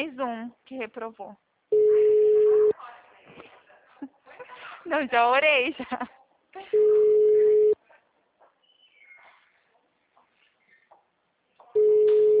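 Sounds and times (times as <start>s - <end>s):
speech: 0.0s - 2.1s, 4.8s - 7.3s
telephone ringback tone on an unanswered call: 1.7s - 2.7s, 6.8s - 7.8s, 11.8s - 12.3s.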